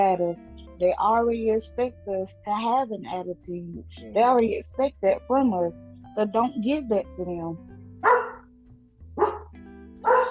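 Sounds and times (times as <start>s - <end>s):
speech: 0.0s - 8.2s
dog barking: 8.0s - 8.4s, 9.2s - 10.2s.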